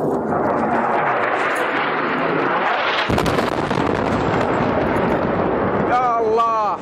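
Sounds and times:
airstrike explosions during the war in Yemen: 0.0 - 6.8
sharp airstrike blast: 0.0 - 6.8.

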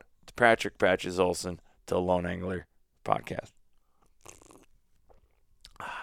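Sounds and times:
speech: 0.4 - 3.6
faint mouth sounds: 3.8 - 6.0
slurping sip of coffee from a cup: 4.1 - 4.7.

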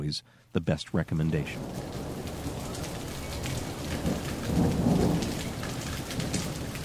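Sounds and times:
speech: 0.1 - 2.0
rain pattering across a surface: 0.5 - 6.8
low rumble of thunder: 1.4 - 6.8.

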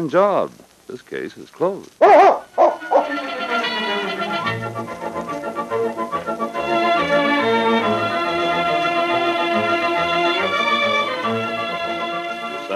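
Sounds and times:
speech: 0.0 - 2.4
dog barking: 2.0 - 3.2
sustained music: 2.5 - 12.7.

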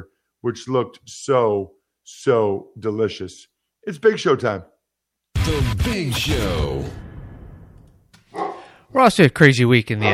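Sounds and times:
speech: 0.0 - 4.7, 5.5 - 7.0, 8.9 - 10.1
dog barking: 8.3 - 8.8.

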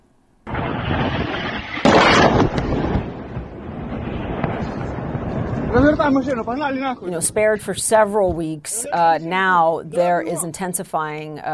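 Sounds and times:
missile strikes exploding near a strategic bridge by Odessa in southern Ukraine: 0.5 - 7.5
sustained low rumble after missile blasts: 0.5 - 8.0
speech: 5.8 - 11.5.

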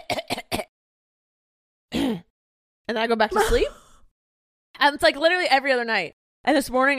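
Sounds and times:
person imitating a night-time cough: 0.0 - 0.7, 1.9 - 2.3, 3.3 - 3.8
speech: 2.9 - 3.8, 4.8 - 6.9
person making a longer voiced sound: 3.3 - 3.8.

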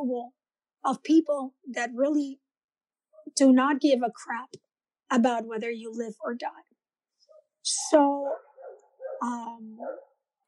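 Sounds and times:
speech: 0.0 - 2.4, 3.3 - 6.7, 7.6 - 8.5, 9.2 - 10.1
dogs letting out drawn-out wavering tonal cries: 8.3 - 9.2.

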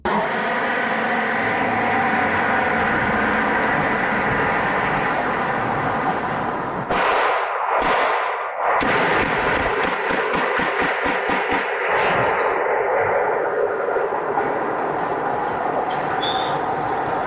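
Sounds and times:
car roaring past loudly: 0.0 - 6.9
street noise: 0.0 - 17.2
gunshots: 6.9 - 12.6
birds chirping: 15.0 - 17.2.

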